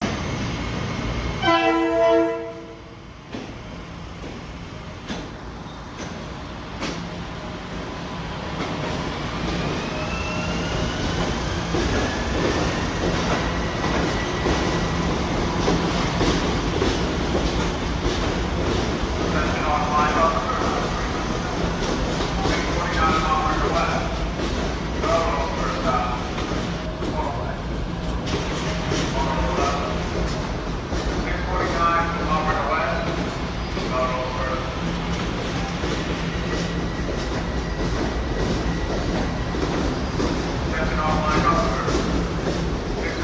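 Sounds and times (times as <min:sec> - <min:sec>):
train: 0:00.0 - 0:43.2.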